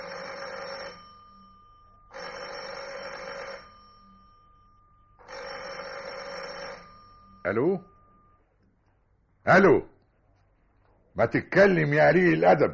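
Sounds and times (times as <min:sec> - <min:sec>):
telephone ringing: 0:00.0 - 0:08.6
speech: 0:07.5 - 0:07.9, 0:09.5 - 0:09.9, 0:11.2 - 0:12.7.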